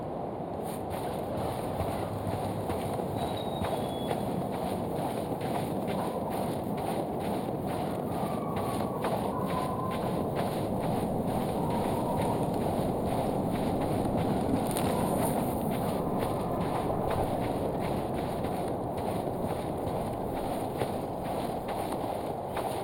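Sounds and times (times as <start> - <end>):
ambient atmosphere: 0.1 - 22.8.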